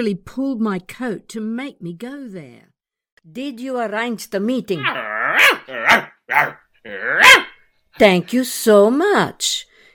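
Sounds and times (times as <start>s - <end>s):
speech: 0.0s - 5.1s, 5.9s - 9.9s
dog barking and growling: 4.7s - 7.7s.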